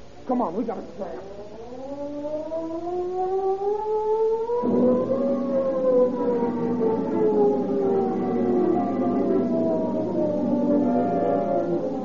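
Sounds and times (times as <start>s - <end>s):
speech: 0.3s - 1.6s
wailing prison escape alarm siren: 1.0s - 12.0s.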